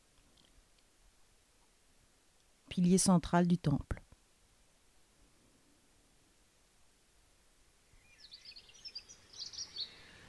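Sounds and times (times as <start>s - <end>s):
speech: 2.8s - 4.0s
faint birdsong with high twittering chirps in a quiet outdoor space: 7.9s - 10.2s.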